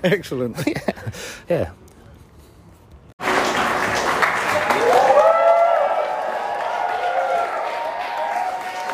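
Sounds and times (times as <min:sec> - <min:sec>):
speech: 0:00.0 - 0:01.9
large crowd applauding at a live gig: 0:03.2 - 0:08.9
cheers and whistles from a large crowd: 0:04.7 - 0:08.9.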